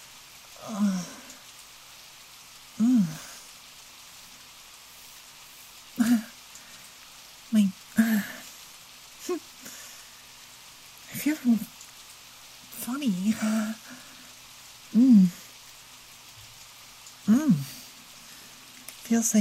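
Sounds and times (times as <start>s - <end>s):
heavy pouring rain: 0.0s - 19.3s
speech: 0.6s - 1.1s, 19.1s - 19.3s
person grunting or murmuring: 0.6s - 1.3s, 2.8s - 3.4s, 17.3s - 17.8s.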